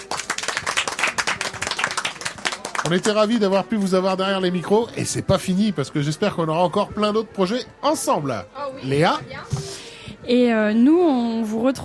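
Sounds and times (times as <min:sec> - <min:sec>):
audience applauding: 0:00.0 - 0:03.6
speech: 0:02.8 - 0:09.6, 0:10.3 - 0:11.8.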